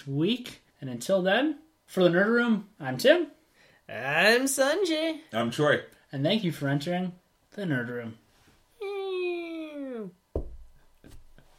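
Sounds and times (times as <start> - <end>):
speech: 0.0 - 8.2
heavy wooden door closing with a deep thud: 10.4 - 10.8.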